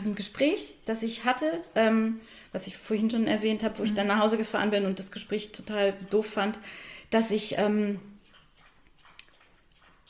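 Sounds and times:
speech: 0.0s - 8.1s
dog lapping water: 3.6s - 10.0s.

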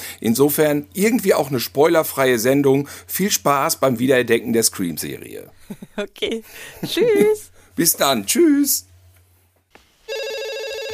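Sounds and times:
speech: 0.2s - 8.9s
laughter: 5.6s - 7.5s
telephone ringing with a steady electronic ring: 10.1s - 10.9s.

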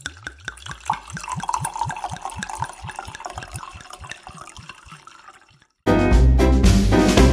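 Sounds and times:
wine glugging from a bottle into a glass: 0.0s - 5.8s
loud music: 5.9s - 7.3s.

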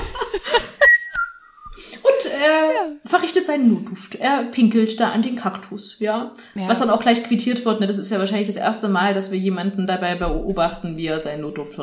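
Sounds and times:
soft chuckling and breathy laughter: 0.0s - 1.1s
man whistling a cheerful tune at a cactus: 0.8s - 1.8s
speech: 2.4s - 11.8s.

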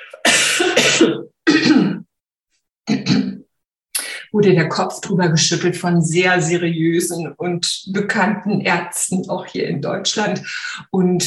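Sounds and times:
harsh rough coughs: 0.0s - 2.0s, 2.9s - 3.4s
speech: 0.6s - 1.4s, 4.4s - 11.2s.

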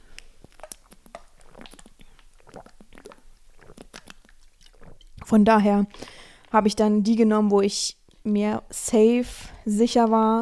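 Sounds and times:
person sipping a drink: 0.0s - 6.6s
soft swallowing: 0.0s - 6.6s
speech: 5.3s - 10.3s.

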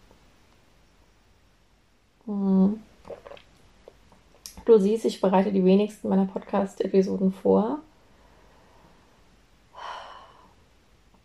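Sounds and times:
speech: 2.3s - 2.8s, 4.7s - 7.9s
sipping hot coffee: 3.0s - 4.6s.

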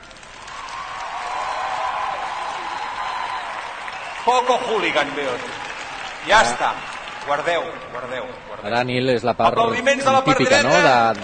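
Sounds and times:
audience applause from the left side: 0.0s - 8.7s
speech: 4.2s - 5.6s, 6.2s - 11.2s.

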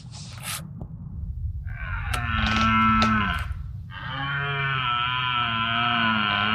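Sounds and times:
low rumbling background: 0.0s - 6.5s
red deer stag roaring during the rut: 1.7s - 6.5s.

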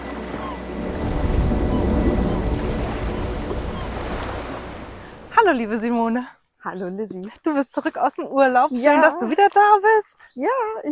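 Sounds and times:
Baltic Sea waves washing onto a shore: 0.0s - 6.0s
wind rumble over the microphone: 0.8s - 5.8s
speech: 5.4s - 10.8s.

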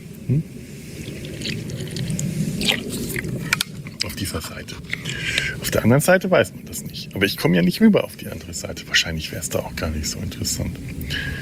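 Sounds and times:
speech: 0.0s - 0.6s, 4.2s - 11.4s
steady low rumble: 0.0s - 11.4s
person gulping water: 0.2s - 4.1s, 4.8s - 5.7s.

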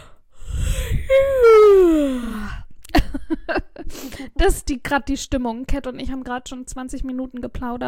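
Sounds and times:
tired person yawning: 0.0s - 2.6s
speech: 4.2s - 7.8s.

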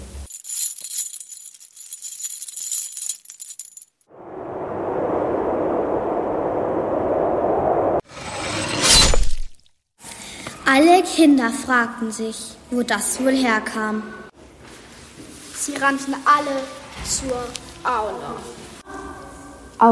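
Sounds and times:
metallic chains jangling and rattling: 0.2s - 4.0s
loud rush of wind: 4.1s - 8.9s
speech: 10.8s - 14.2s, 15.8s - 18.6s.

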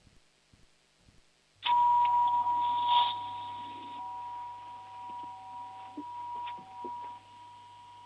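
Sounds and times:
home doorbell chime in Lower Austria: 1.6s - 8.0s.

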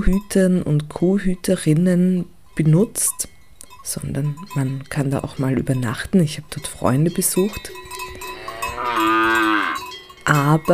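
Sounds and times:
speech: 0.0s - 3.3s, 3.9s - 7.8s, 8.9s - 9.5s, 10.3s - 10.7s
cowbells clanking at an alpine pasture: 2.4s - 10.7s
cow mooing at an alpine pasture: 8.3s - 10.0s.

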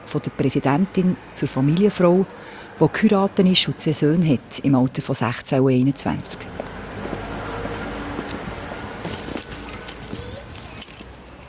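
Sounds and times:
speech: 0.1s - 6.7s
hum of traffic or wind: 8.2s - 11.1s
keys jingling and clinking against a lock: 8.3s - 11.1s.

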